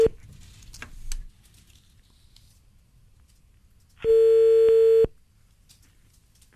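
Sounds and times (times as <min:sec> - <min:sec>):
faint clicks and rustle of a telephone call being placed: 0:00.2 - 0:04.0, 0:05.4 - 0:06.5
telephone electronic ringing tone: 0:04.0 - 0:05.1.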